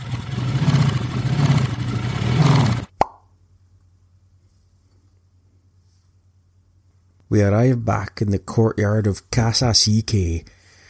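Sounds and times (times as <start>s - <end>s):
motorcycle with sidecar engine rumble: 0.0s - 2.9s
sharp pop: 2.9s - 3.3s
speech: 7.3s - 10.6s.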